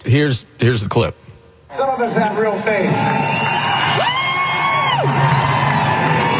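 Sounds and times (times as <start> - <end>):
speech: 0.0 - 3.5
concert crowd cheering in a steady roar: 1.7 - 6.3
long drawn-out shout: 3.0 - 6.3.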